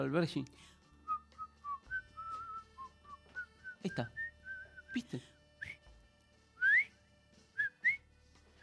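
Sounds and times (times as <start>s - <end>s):
speech: 0.0s - 0.8s, 3.8s - 4.2s, 4.9s - 5.4s
person whistling a short wavering tune: 1.0s - 5.0s, 5.6s - 5.9s, 6.6s - 7.0s, 7.6s - 8.6s.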